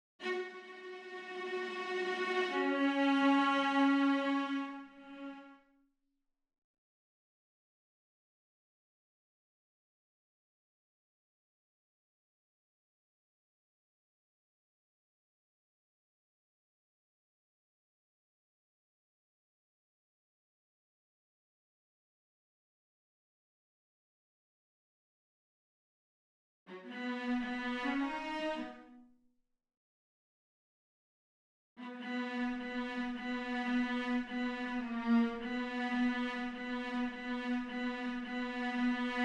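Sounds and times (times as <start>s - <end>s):
violas playing: 0.2s - 5.5s, 26.7s - 29.1s, 31.8s - 39.2s.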